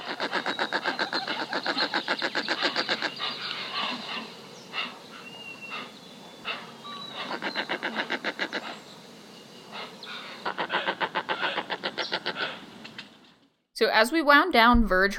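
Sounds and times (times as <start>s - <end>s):
roseate spoonbill calls: 0.0s - 8.9s, 9.7s - 12.8s
speech: 13.9s - 15.1s.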